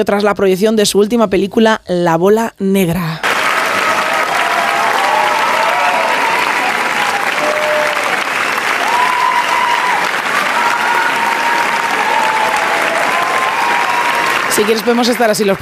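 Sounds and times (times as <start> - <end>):
speech: 0.0 - 3.3, 14.6 - 15.6
scattered cheers and whoops: 3.2 - 14.9
large crowd giving a standing ovation at a film festival: 3.2 - 15.6.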